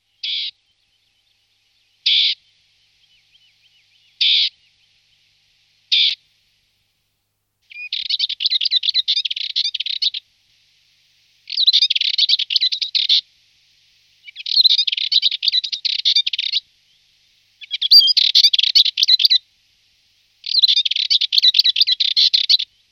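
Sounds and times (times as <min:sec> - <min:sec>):
chestnut-headed warbler singing: 0:00.1 - 0:05.2, 0:07.7 - 0:10.2, 0:11.5 - 0:13.2, 0:14.2 - 0:19.4, 0:20.4 - 0:22.8.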